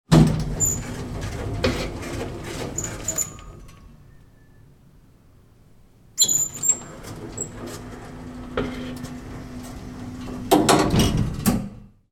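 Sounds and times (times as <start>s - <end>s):
industrial machinery elevator door opening and closing: 0.1s - 4.4s, 6.2s - 11.9s.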